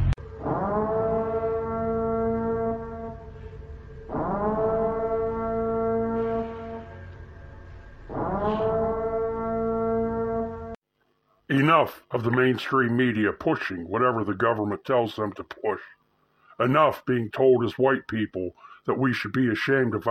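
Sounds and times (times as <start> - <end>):
emergency broadcast system siren blaring: 0.2 - 10.8
speech: 11.6 - 16.0, 16.6 - 20.0.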